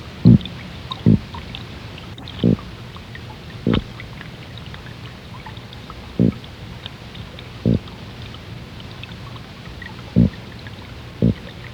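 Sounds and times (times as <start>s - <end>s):
Holocentrus ascensionis squirrelfish sounds at Bimini: 0.3s - 1.4s, 2.2s - 2.7s, 6.2s - 6.4s, 7.6s - 8.0s.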